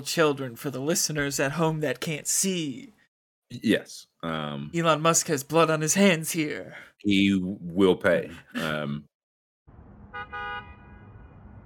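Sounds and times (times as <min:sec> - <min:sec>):
speech: 0:00.0 - 0:09.1
laughter: 0:08.3 - 0:08.9
low rumble of traffic and engine noise: 0:09.7 - 0:11.6
car horn honks during a test of autonomous cars: 0:10.0 - 0:11.6.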